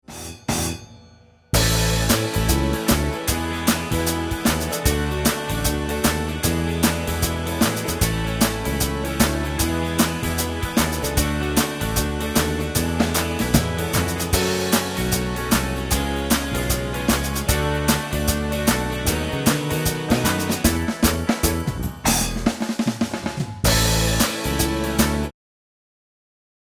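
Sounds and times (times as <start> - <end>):
pop song drums: 0.0 - 25.3
two pop song guitars: 1.6 - 21.8
pop song keyboard: 1.6 - 22.6, 23.6 - 25.3.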